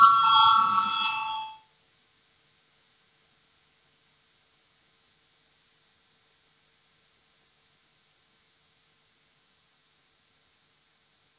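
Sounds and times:
parliamentary voting bell ringing: 0.0 - 1.6.

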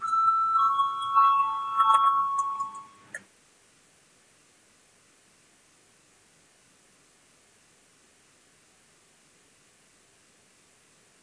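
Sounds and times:
electric voting bell in a parliament ringing to call a vote: 0.0 - 3.1.

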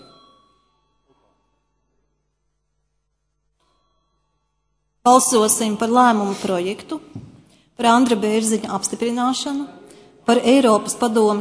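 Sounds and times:
bell rung to call a parliamentary vote: 0.0 - 2.1, 3.6 - 5.9
speech: 5.1 - 7.2, 7.8 - 11.3.

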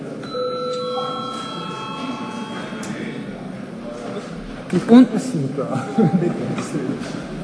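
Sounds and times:
murmur of many people talking in a large room: 0.0 - 7.4
electronic parliament session bell ringing: 0.2 - 3.4
laughter: 5.6 - 7.4.

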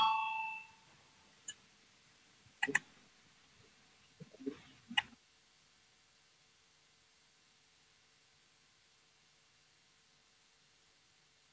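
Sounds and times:
parliamentary voting bell ringing: 0.0 - 0.8.

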